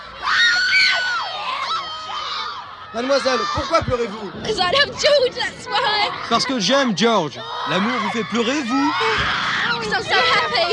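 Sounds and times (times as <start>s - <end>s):
crowd of young fans screaming at an event attended by royalty: 0.0s - 4.3s, 7.3s - 10.7s
speech: 2.9s - 10.7s.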